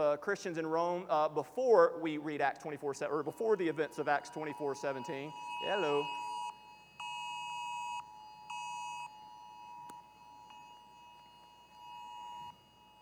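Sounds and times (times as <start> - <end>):
speech: 0.0 - 6.3
electronic device alarm beeping: 3.2 - 12.6.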